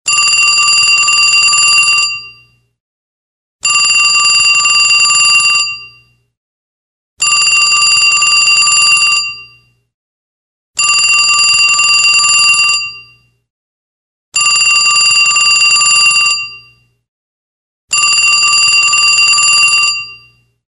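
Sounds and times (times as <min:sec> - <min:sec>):
old phone ringing: 0:00.1 - 0:02.3, 0:03.6 - 0:05.9, 0:07.2 - 0:09.5, 0:10.8 - 0:13.0, 0:14.4 - 0:16.6, 0:17.9 - 0:20.3.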